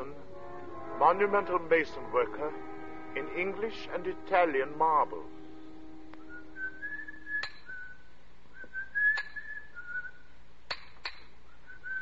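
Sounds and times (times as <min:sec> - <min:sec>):
speech: 0:01.0 - 0:05.4
person whistling a bright wandering tune: 0:06.2 - 0:10.3, 0:11.5 - 0:12.0.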